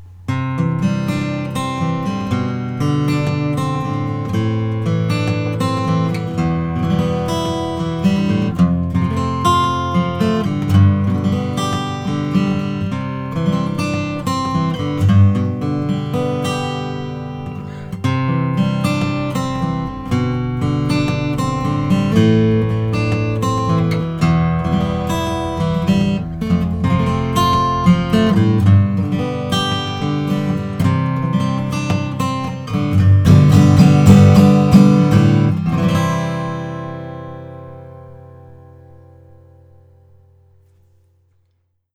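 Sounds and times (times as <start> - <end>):
12-fret acoustic guitar with Adirondack top: 0.0 - 41.9.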